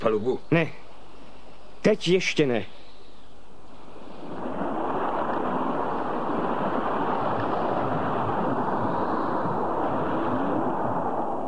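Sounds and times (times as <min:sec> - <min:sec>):
speech: 0:00.0 - 0:00.8, 0:01.8 - 0:02.8
gusting wind at sea: 0:00.0 - 0:11.4
ocean waves striking the side of a ship at sea: 0:00.8 - 0:11.4.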